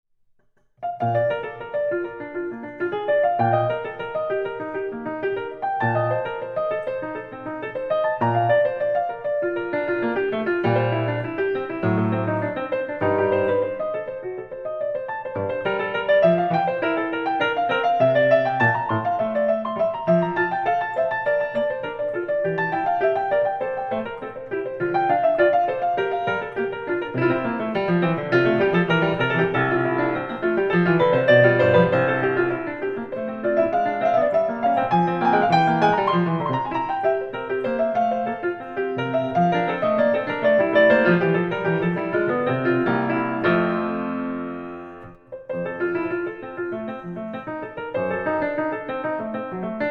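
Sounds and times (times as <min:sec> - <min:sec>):
baroque partita allemande on piano: 0:00.4 - 0:49.8.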